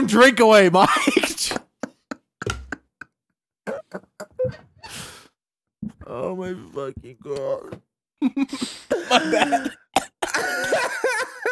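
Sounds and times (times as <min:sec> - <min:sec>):
speech: 0:00.0 - 0:01.6, 0:06.4 - 0:11.0
laughter: 0:00.8 - 0:03.1, 0:08.2 - 0:11.5
man coughing into a microphone: 0:08.9 - 0:11.5.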